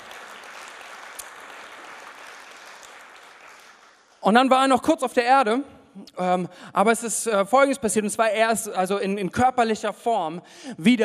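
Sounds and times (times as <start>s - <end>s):
audience applause: 0.0s - 4.2s
speech: 4.2s - 11.0s.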